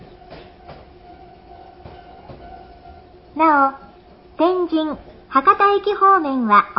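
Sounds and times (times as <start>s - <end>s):
commuter train wheels clacking over rail joints: 0.0s - 4.2s
commuter train interior rumble: 0.0s - 6.0s
commuter train faint tonal motor hum: 0.0s - 6.7s
speech: 3.4s - 3.8s, 4.4s - 6.7s.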